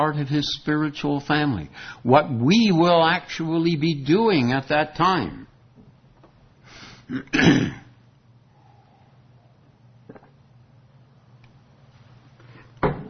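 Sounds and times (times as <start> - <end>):
speech: 0.0 - 5.5, 7.1 - 7.8
person clearing throat: 7.0 - 8.0
person coughing loudly: 7.0 - 8.0.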